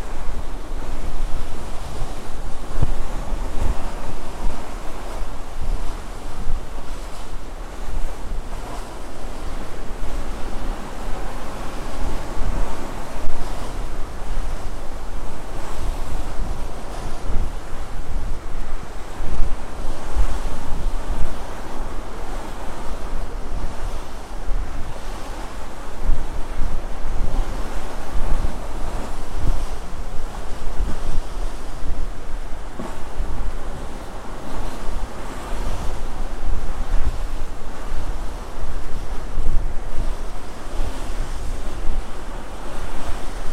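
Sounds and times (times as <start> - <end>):
gusting wind: 0.0 - 43.5
rough sea waves washing heavily against a ship: 0.0 - 43.5.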